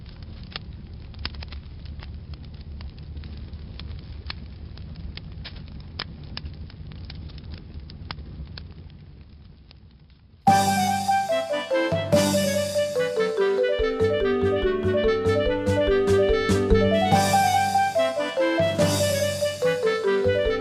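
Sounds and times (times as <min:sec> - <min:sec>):
fire burning on a stove: 0:00.0 - 0:20.5
tonal musical sound: 0:10.5 - 0:20.5.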